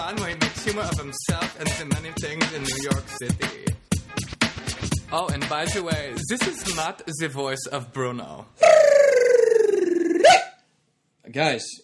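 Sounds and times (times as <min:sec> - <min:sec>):
speech: 0:00.0 - 0:03.8, 0:05.1 - 0:09.0, 0:11.3 - 0:11.8
dog barking almost into a howl: 0:10.2 - 0:10.6.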